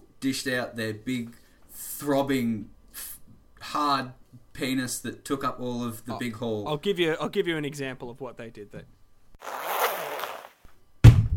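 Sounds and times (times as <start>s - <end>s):
speech: 0.2s - 3.1s, 3.7s - 9.0s
zipper being pulled: 9.4s - 10.7s.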